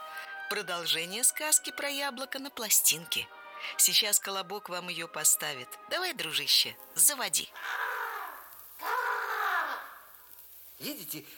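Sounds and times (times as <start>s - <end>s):
speech: 0.5s - 7.8s, 10.8s - 11.3s
crow cawing on an old forest apple tree: 7.6s - 10.2s.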